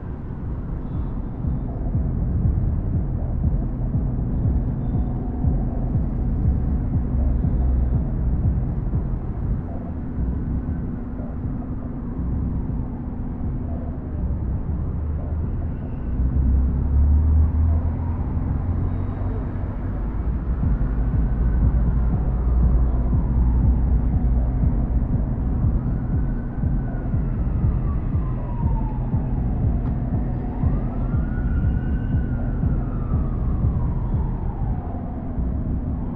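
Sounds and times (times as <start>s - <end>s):
night city ambience: 0.0s - 36.1s.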